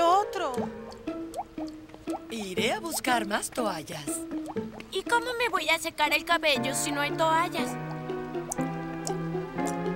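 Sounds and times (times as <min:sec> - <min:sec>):
water dripping from a roof leak caused by a clogged roof gutter during rain: 0:00.0 - 0:05.1, 0:07.6 - 0:09.9
speech: 0:00.5 - 0:00.9, 0:02.6 - 0:07.8.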